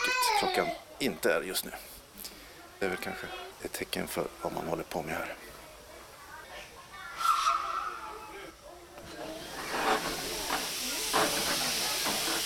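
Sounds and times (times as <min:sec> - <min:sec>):
speech: 0:00.4 - 0:01.9, 0:02.8 - 0:05.5
steam train hissing steam leaving Sankt Olofs station: 0:07.1 - 0:08.1, 0:09.0 - 0:12.4
steam train heavy chuffs leaving Sankt Olofs station: 0:09.3 - 0:12.4.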